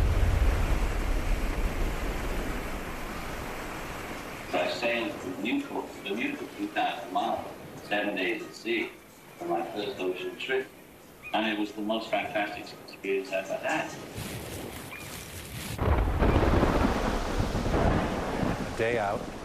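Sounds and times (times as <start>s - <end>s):
thunder rumbling in a nor'easter at sea: 0.0s - 5.4s, 15.8s - 19.4s
stormy ocean waves from a nor'easter at sea: 0.0s - 19.4s
speech: 4.9s - 10.7s, 11.3s - 14.4s, 18.8s - 19.4s.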